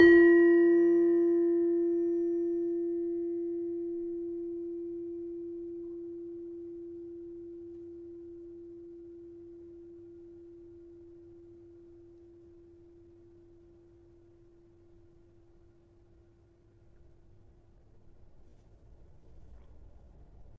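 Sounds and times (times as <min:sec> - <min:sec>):
tuned gamelan demung in F: 0:00.0 - 0:09.3.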